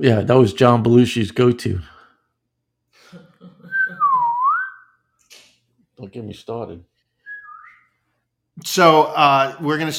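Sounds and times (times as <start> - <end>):
speech: 0.0 - 1.9, 6.0 - 6.9, 8.6 - 9.9
slide whistle swooping: 3.7 - 5.0, 7.2 - 7.9.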